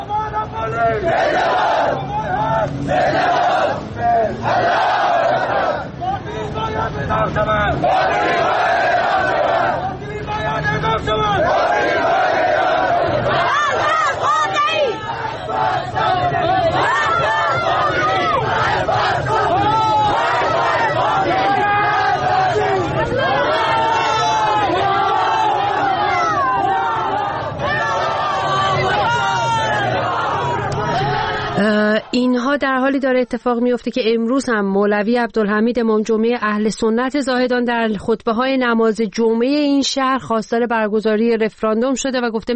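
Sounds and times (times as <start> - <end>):
crowd of protesters chanting in a street protest in the town of Rast, Iran: 0.0 - 32.6
crowd noise: 0.0 - 42.5
speech: 0.7 - 1.6, 32.2 - 42.5.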